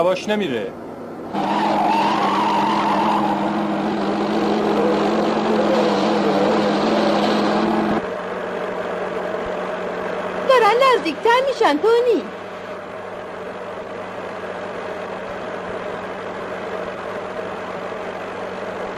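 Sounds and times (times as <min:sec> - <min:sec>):
speech: 0:00.0 - 0:01.5, 0:10.7 - 0:12.4
car engines racing at high speed in a chase: 0:00.0 - 0:18.9
tires skidding: 0:01.2 - 0:08.0.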